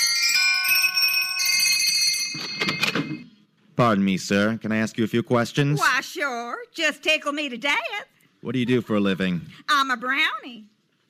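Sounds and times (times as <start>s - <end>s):
doorbell ringing with bright sustained chiming tones: 0.0s - 3.4s
speech: 3.8s - 10.7s.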